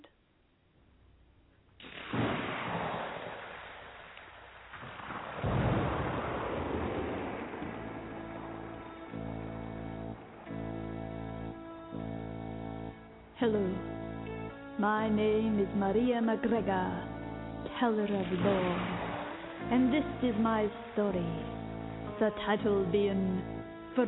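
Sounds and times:
steady hiss of rain: 0:01.8 - 0:10.7, 0:18.0 - 0:22.2
heavy rolls of thunder: 0:01.9 - 0:11.6, 0:17.9 - 0:22.2
sustained droning music tones: 0:06.7 - 0:24.0
speech: 0:13.4 - 0:13.9, 0:14.8 - 0:17.1, 0:17.8 - 0:18.9, 0:19.7 - 0:21.6, 0:22.2 - 0:24.0.

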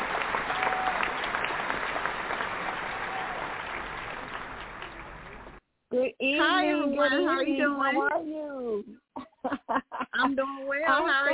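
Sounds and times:
crowd applauding to welcome an author as a guest: 0:00.0 - 0:05.6
speech: 0:06.1 - 0:11.3
laughter: 0:09.2 - 0:10.4.

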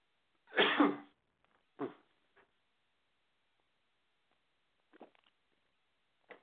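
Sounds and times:
coughing: 0:00.5 - 0:01.1.

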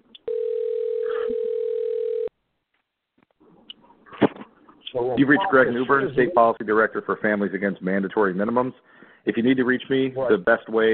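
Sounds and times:
telephone ringback tone heard through the receiver: 0:00.3 - 0:02.3
speech: 0:05.0 - 0:10.9.

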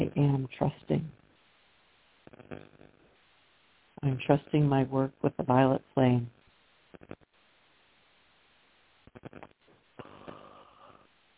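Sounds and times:
faint hiss: 0:00.0 - 0:11.3
speech: 0:00.2 - 0:01.2, 0:04.0 - 0:06.4, 0:09.2 - 0:09.6
short breathy raspy bursts of breath: 0:10.0 - 0:11.2.

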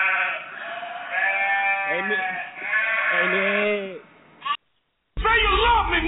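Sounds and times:
sheep bleating: 0:00.0 - 0:04.6
speech: 0:01.9 - 0:04.0.

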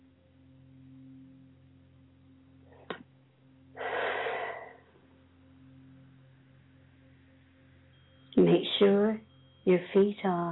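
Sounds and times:
faint steady low hum: 0:00.0 - 0:10.4
long deep breath: 0:03.8 - 0:05.0
speech: 0:08.4 - 0:10.4.

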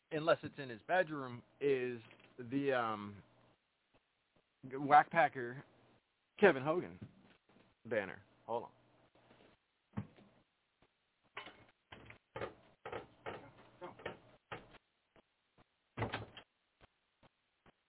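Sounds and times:
speech: 0:00.1 - 0:03.3, 0:04.6 - 0:05.7, 0:06.4 - 0:07.2, 0:07.8 - 0:08.8
door creaking: 0:11.4 - 0:14.8
door opening and closing to let a cat in: 0:11.4 - 0:14.8, 0:16.0 - 0:16.5.

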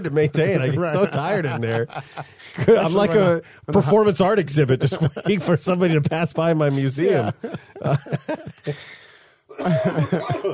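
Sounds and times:
speech: 0:00.0 - 0:09.0, 0:09.6 - 0:10.5
laughter: 0:00.0 - 0:10.5
person coughing: 0:09.5 - 0:10.5.

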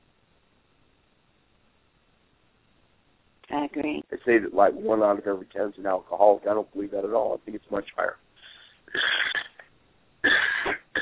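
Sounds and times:
speech: 0:03.5 - 0:08.2, 0:08.9 - 0:09.2
person coughing in harsh bursts: 0:08.9 - 0:11.0.

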